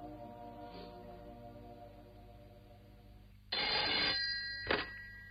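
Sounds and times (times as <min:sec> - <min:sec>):
telephone bell ringing: 0:03.6 - 0:05.2.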